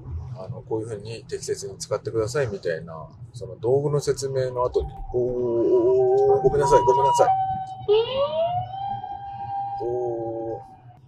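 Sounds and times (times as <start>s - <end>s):
low road rumble: 0.0s - 11.0s
speech: 0.4s - 8.6s, 9.8s - 10.2s
ambulance siren entering an intersection: 5.0s - 11.0s.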